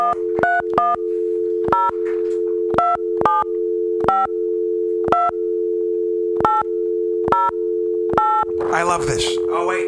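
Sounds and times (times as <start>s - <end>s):
short telephone keypad beeps: 0.0s - 1.0s, 1.6s - 4.3s, 5.0s - 5.4s, 6.4s - 9.2s
telephone dial tone: 0.0s - 9.6s
speech: 8.1s - 9.8s.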